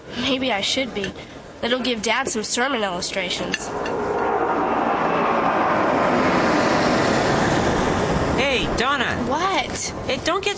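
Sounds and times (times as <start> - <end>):
speech: 0.2 - 4.2, 8.4 - 10.5
loud airplane passing overhead: 3.0 - 10.2.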